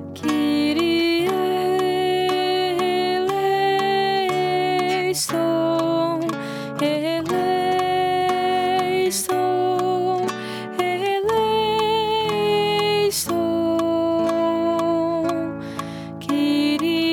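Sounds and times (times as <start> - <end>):
soprano singing a Kyrie: 0.2 - 17.1.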